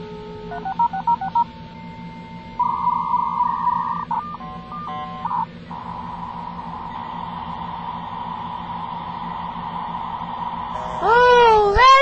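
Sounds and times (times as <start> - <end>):
steady low hum: 0.0 - 12.0
touch-tone telephone dialing beeps of a dial-up internet access number: 0.5 - 1.5, 2.6 - 7.3.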